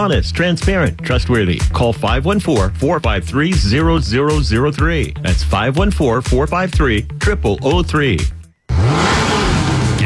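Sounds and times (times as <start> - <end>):
speech: 0.0 - 8.4
car engine revving at a summer car meet: 8.7 - 10.0.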